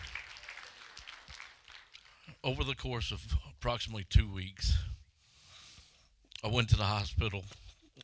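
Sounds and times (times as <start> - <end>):
crowd clapping during a testimony: 0.0 - 2.5
speech: 2.4 - 4.9, 6.4 - 7.6.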